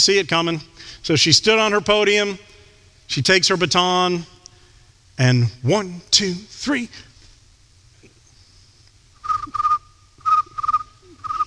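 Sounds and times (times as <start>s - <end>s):
speech: 0.0s - 4.4s, 5.2s - 7.1s
faint steady hum: 0.0s - 11.4s
crickets chirping: 9.2s - 11.4s.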